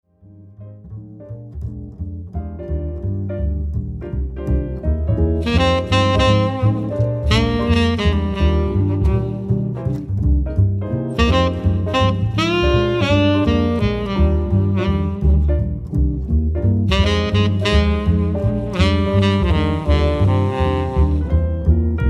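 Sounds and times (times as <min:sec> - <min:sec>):
bass in a quartet: 0:00.0 - 0:22.0
piano in a quartet: 0:00.0 - 0:22.0
saxophone in a quartet: 0:05.4 - 0:10.4, 0:11.1 - 0:16.2, 0:16.8 - 0:22.0.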